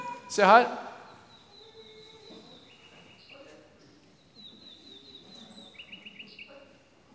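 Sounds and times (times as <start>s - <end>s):
murmur of voices: 0.0s - 7.1s
speech: 0.3s - 0.9s
bird chirping: 0.9s - 6.9s.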